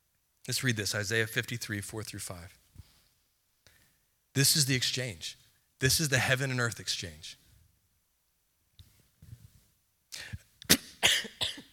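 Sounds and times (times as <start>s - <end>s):
speech: 0.5s - 2.6s, 4.4s - 7.4s
person coughing after almost inhaling chewing gum: 10.7s - 11.7s.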